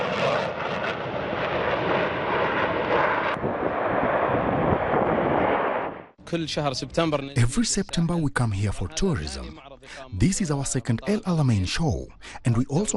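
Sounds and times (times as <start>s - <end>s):
aircraft flyover with engine roar at an air show: 0.0s - 7.0s
speech: 6.3s - 12.9s.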